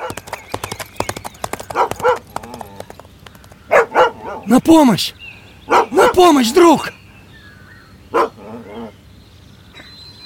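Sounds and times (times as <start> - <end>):
galloping horse hoofbeats: 0.0 - 4.0
speech: 4.5 - 5.2, 6.2 - 7.0.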